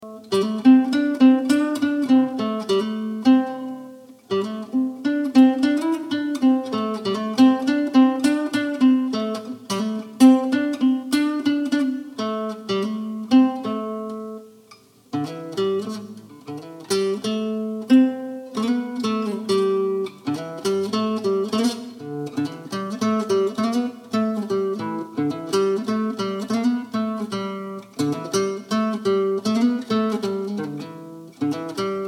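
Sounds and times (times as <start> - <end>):
sixties-style guitar practice: 0.0 - 32.0.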